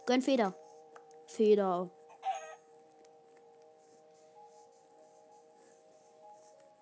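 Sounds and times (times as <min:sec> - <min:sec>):
steady quiet tonal music: 0:00.0 - 0:06.8
speech: 0:00.1 - 0:00.6, 0:01.3 - 0:02.0
video game chicken clucking: 0:02.2 - 0:02.6.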